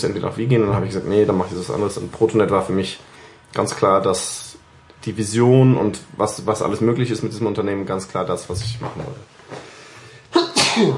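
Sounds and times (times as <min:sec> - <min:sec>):
speech: 0:00.0 - 0:09.6, 0:10.8 - 0:10.9
person sneezing: 0:10.3 - 0:10.9.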